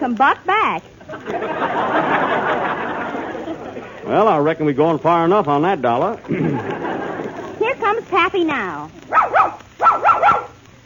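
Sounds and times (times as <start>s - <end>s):
speech: 0.0s - 2.6s, 3.5s - 7.0s, 7.9s - 10.5s
laughter: 1.0s - 4.3s, 6.1s - 7.8s
puppy barking in high-pitched yips: 9.1s - 10.6s.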